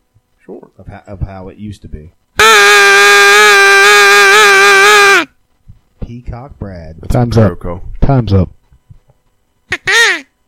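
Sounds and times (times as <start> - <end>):
speech: 0.8 - 2.2, 6.1 - 8.6
hunter's crow call blown: 2.4 - 5.3, 9.7 - 10.3.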